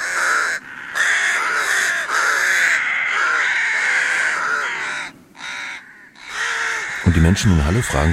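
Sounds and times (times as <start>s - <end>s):
flock of rooks cawing: 0.0s - 8.1s
speech: 7.1s - 8.1s.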